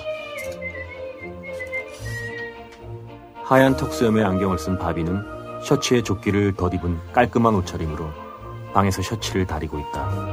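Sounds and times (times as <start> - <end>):
white-haired man whistling a melody: 0.3 - 2.7
speech: 3.5 - 10.3.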